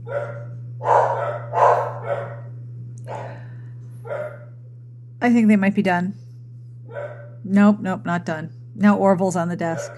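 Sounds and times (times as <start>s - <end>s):
two dogs barking back and forth: 0.0s - 4.5s, 6.9s - 7.4s, 9.6s - 9.9s
low electrical hum: 0.0s - 9.9s
speech: 0.1s - 1.5s, 5.2s - 6.2s, 7.4s - 9.9s.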